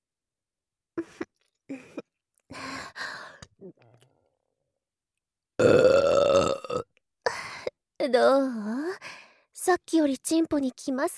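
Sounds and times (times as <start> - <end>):
woman burping and belching: 5.6 - 6.9
speech: 8.0 - 8.7, 9.7 - 11.1.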